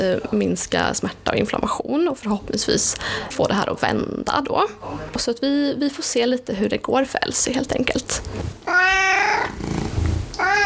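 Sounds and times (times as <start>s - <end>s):
speech: 0.0s - 9.6s
low rustling: 8.0s - 10.6s
16-year-old cat meowing during a veterinary health checkup: 8.6s - 9.7s, 10.3s - 10.6s.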